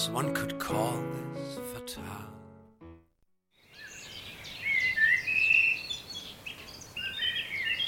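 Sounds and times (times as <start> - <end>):
speech: 0.0 - 2.4
birds singing bright high chirps and trills: 3.5 - 7.8.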